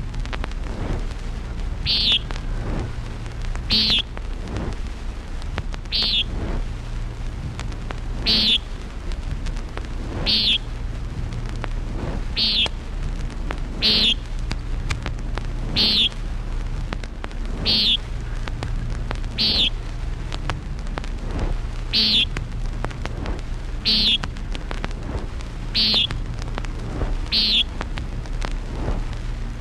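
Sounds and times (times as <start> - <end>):
constant low rumble of wind or traffic: 0.0 - 29.5
Common nighthawk peent calls: 1.8 - 2.5, 3.6 - 4.1, 5.9 - 6.4, 8.2 - 8.7, 10.2 - 10.7, 12.3 - 12.8, 13.8 - 14.3, 15.7 - 16.2, 17.6 - 18.4, 19.3 - 19.8, 21.8 - 22.4, 23.7 - 24.3, 25.7 - 26.2, 27.1 - 27.8.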